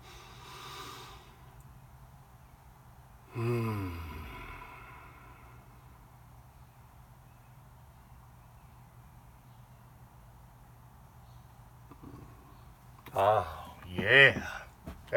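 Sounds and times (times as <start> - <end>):
person taking a deep breath during a guided pause: 0.0 - 1.4, 3.3 - 5.8
speech: 13.2 - 15.1.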